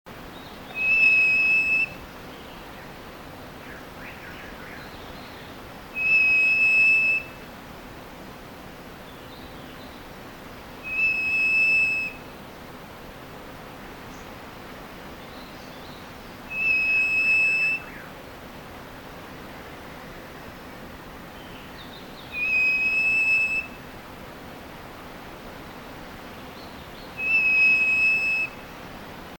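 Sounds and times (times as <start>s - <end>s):
Purple Cochoa Cochoa purpurea calling: 0.4s - 7.5s, 10.8s - 12.4s, 15.2s - 18.4s, 21.3s - 24.0s, 26.4s - 28.8s.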